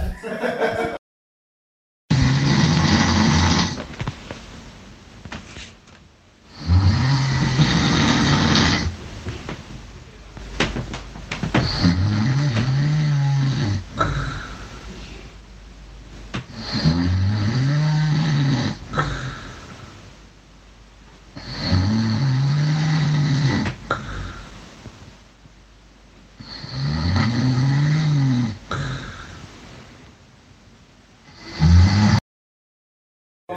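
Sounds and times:
laughter: 0.1 - 1.0
loud snoring with heavy rattling breaths: 2.1 - 3.9, 6.5 - 9.0, 11.6 - 14.7, 16.5 - 19.7, 21.4 - 24.5, 26.4 - 29.4, 31.3 - 32.2.

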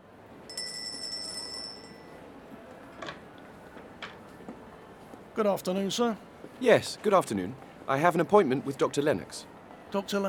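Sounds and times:
doorbell ringing with a bright metallic tone: 0.5 - 2.1
speech: 5.4 - 10.2.

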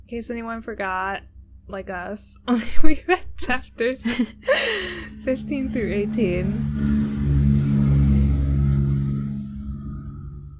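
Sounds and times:
speech: 0.1 - 6.8
laughter: 2.6 - 6.1
loud car engine revving and rumbling past outside: 4.3 - 10.5.

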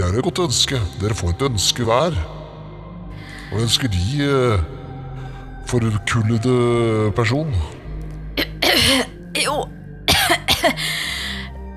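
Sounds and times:
speech: 0.1 - 2.4, 3.5 - 4.8, 5.7 - 7.8
person coughing: 8.4 - 11.5
raspy exhale: 10.8 - 11.5.

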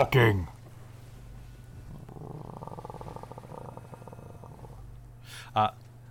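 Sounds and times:
tiger purr-like grumble: 1.8 - 5.0.

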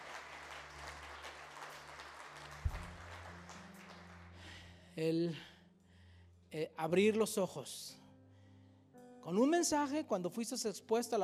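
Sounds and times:
room full of people applauding: 0.0 - 4.7
speech: 5.0 - 5.5, 6.5 - 8.0, 9.2 - 11.2.

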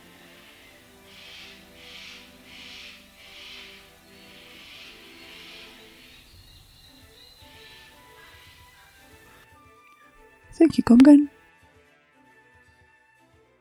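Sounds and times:
birds chirping in a busy chorus: 0.0 - 9.4
speech: 10.6 - 11.4.

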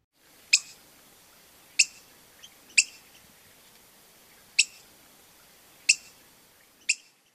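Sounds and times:
black-headed grosbeak giving sharp high spink calls: 0.5 - 0.8, 1.8 - 3.2, 4.4 - 4.8, 5.8 - 6.2, 6.8 - 7.2.

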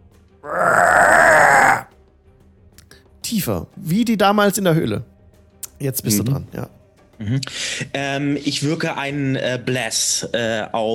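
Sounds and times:
speech: 0.4 - 0.8, 3.3 - 5.1, 5.8 - 10.9
deep growling monster roar: 0.4 - 1.9.

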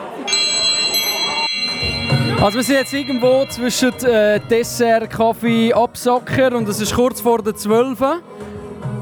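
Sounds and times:
glasses clinking together in a toast at an evening dinner: 0.3 - 5.7
speech: 2.4 - 8.6.

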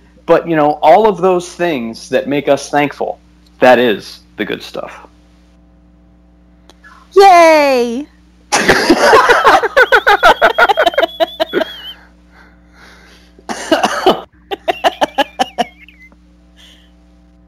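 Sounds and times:
speech: 0.3 - 5.1, 7.1 - 10.7
laughter: 8.5 - 12.0, 13.5 - 16.2
person's harsh coughing fit with wheezy whistle: 13.5 - 14.3.

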